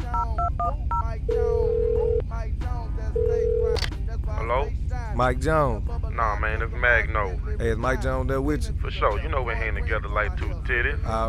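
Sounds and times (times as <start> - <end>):
low hum: 0.0 - 11.2
voices: 0.0 - 11.2
long steady telephone ringing tones on the line: 0.2 - 2.2, 3.2 - 3.8
telephone touch-tone dialing beeps: 0.2 - 2.2
speech: 5.2 - 11.2.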